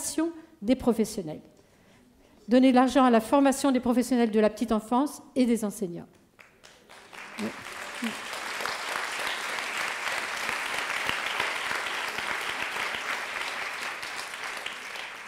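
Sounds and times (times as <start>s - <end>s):
speech: 0.2s - 1.6s, 2.5s - 6.2s, 7.4s - 8.2s
audience applause: 6.5s - 15.2s.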